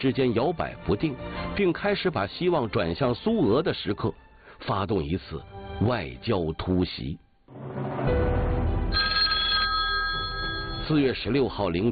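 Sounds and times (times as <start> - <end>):
speech: 0.0 - 7.2, 10.9 - 11.9
telephone bell ringing: 8.9 - 11.3.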